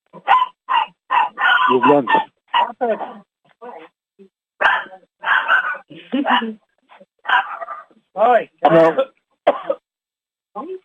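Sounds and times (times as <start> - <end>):
dog barking: 0.2 - 2.8, 4.6 - 6.6, 7.2 - 7.9
speech: 1.7 - 3.3, 6.3 - 6.6, 8.2 - 9.1.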